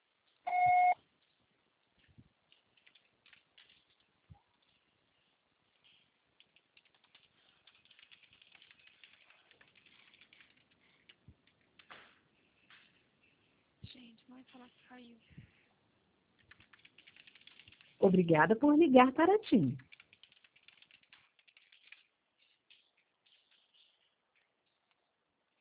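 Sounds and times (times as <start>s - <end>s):
faint clicks and rustles: 0.0s - 18.3s, 19.4s - 25.5s
mobile network voicemail recording beep: 0.5s - 1.0s
speech: 14.1s - 15.5s, 18.0s - 19.9s.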